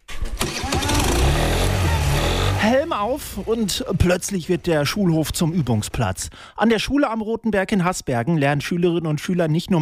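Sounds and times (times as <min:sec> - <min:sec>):
moped engine ignition burst: 0:00.0 - 0:04.0
speech: 0:02.6 - 0:09.8.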